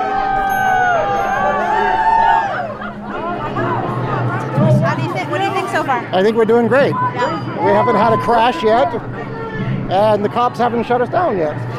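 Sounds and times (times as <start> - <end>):
dense outdoor parade crowd cheering and shouting: 0.0 - 4.7, 6.8 - 11.0
speech: 6.0 - 9.2, 9.9 - 11.7.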